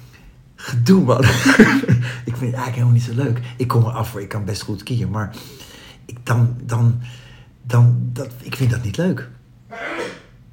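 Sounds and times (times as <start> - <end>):
low hum: 0.0 - 10.5
speech: 0.7 - 5.7, 6.3 - 9.8
laughter: 1.2 - 2.0
sneeze: 9.7 - 10.4.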